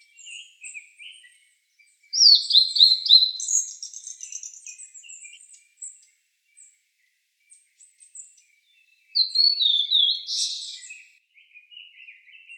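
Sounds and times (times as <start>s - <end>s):
Blue-and-white flycatcher singing: 2.2s - 5.4s, 9.2s - 11.2s.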